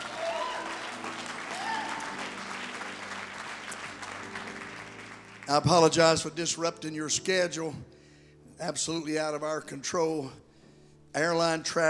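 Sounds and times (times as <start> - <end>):
church audience clapping hands on request: 0.0 - 6.2
speech: 5.5 - 8.0, 8.6 - 10.4, 11.1 - 11.8.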